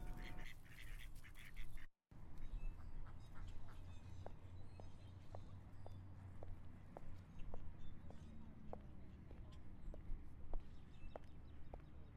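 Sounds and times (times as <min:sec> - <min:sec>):
ducks quacking: 0:00.0 - 0:01.9
steady outdoor noise: 0:00.0 - 0:12.1.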